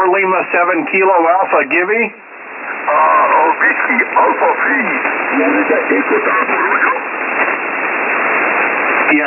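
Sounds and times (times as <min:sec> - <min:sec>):
speech: 0:00.0 - 0:06.9, 0:09.1 - 0:09.2
radio transmission hissing static and interference: 0:00.0 - 0:09.2
faint voice breaking through radio crackle: 0:02.9 - 0:07.1.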